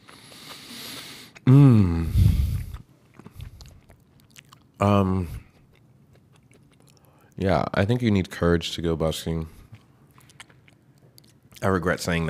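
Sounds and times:
person chewing food: 0:00.0 - 0:07.4, 0:09.5 - 0:11.7
short voiced hums or murmurs: 0:01.4 - 0:02.8
speech: 0:01.5 - 0:02.2, 0:04.8 - 0:05.4, 0:07.4 - 0:09.6, 0:11.6 - 0:12.2.

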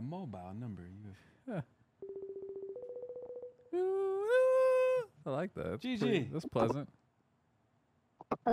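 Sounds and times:
speech: 0:00.1 - 0:02.1, 0:03.7 - 0:04.5, 0:05.2 - 0:07.0, 0:08.3 - 0:08.5
rapid pulsing electronic video call ringtone: 0:02.0 - 0:03.7.

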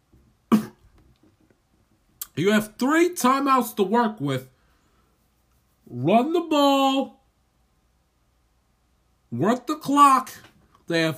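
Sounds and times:
person with a dry throat coughing: 0:00.5 - 0:00.9
faint throat clearing: 0:00.5 - 0:01.0
speech: 0:02.4 - 0:04.5, 0:05.9 - 0:07.2, 0:09.3 - 0:11.1.

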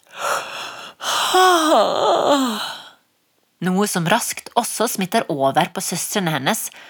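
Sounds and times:
person yawning: 0:00.1 - 0:03.0
speech: 0:03.6 - 0:06.8.

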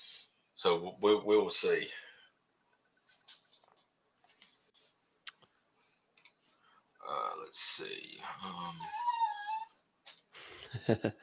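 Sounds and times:
speech: 0:00.6 - 0:02.0, 0:07.5 - 0:09.1, 0:10.7 - 0:11.2
female dog whining: 0:03.0 - 0:03.4, 0:08.1 - 0:09.9.

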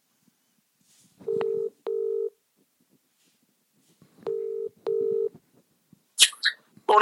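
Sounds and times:
faint noise: 0:00.0 - 0:07.0
telephone line tones as a call is placed: 0:01.3 - 0:02.4, 0:04.3 - 0:05.3.

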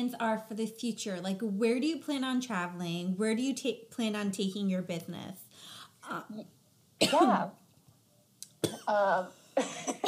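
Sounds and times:
speech: 0:00.0 - 0:07.6, 0:08.6 - 0:10.0
person coughing with something stuck in the throat: 0:07.0 - 0:07.4, 0:08.6 - 0:10.0.

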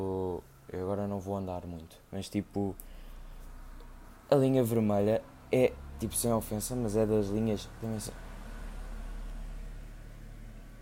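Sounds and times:
speech: 0:01.2 - 0:03.0, 0:04.3 - 0:08.2
bus rumbling past on the street: 0:03.5 - 0:10.8.

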